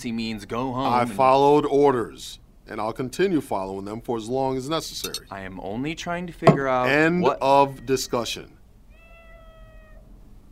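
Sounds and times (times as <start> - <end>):
speech: 0.0 - 8.6
low rumbling noise: 0.0 - 10.5
barn cat meowing: 7.4 - 8.2, 8.9 - 10.1.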